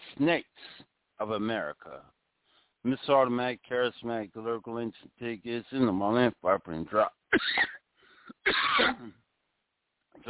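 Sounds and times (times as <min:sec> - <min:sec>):
speech: 0:00.2 - 0:02.2, 0:02.8 - 0:07.7, 0:08.7 - 0:09.2
person coughing and clearing throat: 0:07.3 - 0:09.2.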